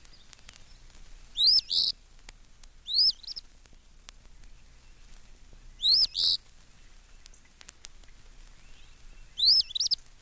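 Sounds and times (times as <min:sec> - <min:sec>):
Eastern Phoebe singing: 0:01.4 - 0:01.9, 0:02.9 - 0:03.4, 0:05.8 - 0:06.4, 0:08.6 - 0:10.0.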